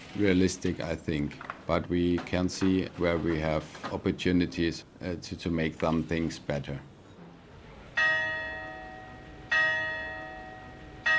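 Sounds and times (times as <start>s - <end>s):
speech: 0.1s - 6.9s
church clock bell in Bad Kissingen chiming: 8.0s - 11.1s.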